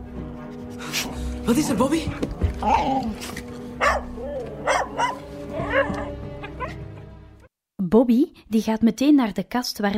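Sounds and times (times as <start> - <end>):
speech: 0.8 - 4.1, 7.9 - 9.9
small dog barking excitedly under a cupboard: 3.8 - 6.8.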